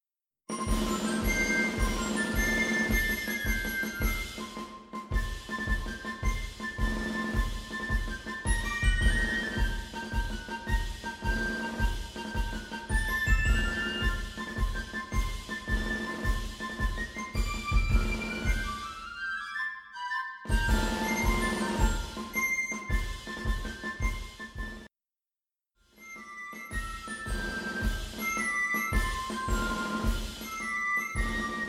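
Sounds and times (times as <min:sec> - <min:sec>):
drums: 0:00.5 - 0:19.3, 0:20.5 - 0:24.9, 0:25.9 - 0:31.6
flutes: 0:00.6 - 0:24.9, 0:26.1 - 0:31.6.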